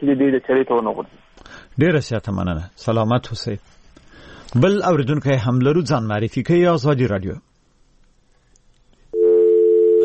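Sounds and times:
speech: 0.0s - 3.8s, 4.5s - 7.5s
telephone dial tone after a call is cut off: 9.2s - 10.0s.

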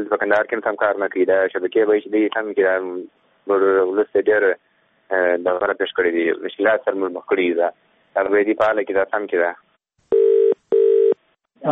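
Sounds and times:
speech: 0.0s - 9.6s
telephone dialing tones: 10.1s - 11.2s.

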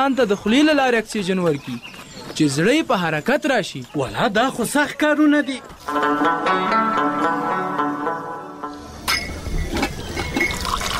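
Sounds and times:
speech: 0.0s - 7.8s
tea pouring into a glass: 10.5s - 10.9s.

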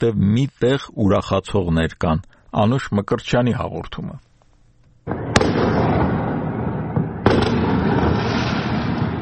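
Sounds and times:
speech: 0.0s - 4.3s
fireworks crackling in city streets at night: 5.1s - 9.2s.

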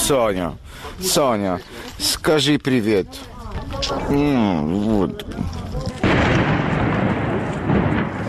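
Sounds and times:
speech: 0.1s - 5.9s
heavy explosion with long rolling rumble: 6.0s - 8.2s.

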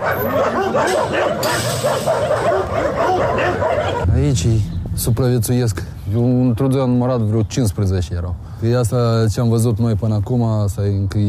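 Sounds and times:
several stray dogs barking and yipping: 0.0s - 4.2s
speech: 4.2s - 11.2s.

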